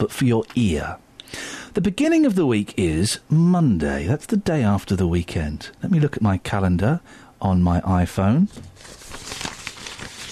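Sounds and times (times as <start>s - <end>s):
speech: 0.0s - 9.3s
paper rustling and crinkling: 8.5s - 10.3s.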